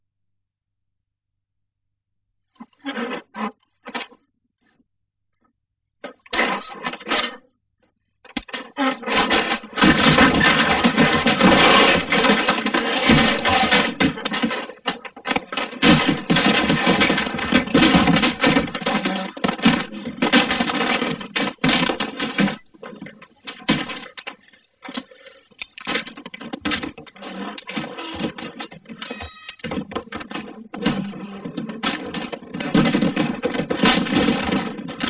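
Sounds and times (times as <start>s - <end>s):
bar fight: 8.6s - 25.1s, 25.8s - 35.0s.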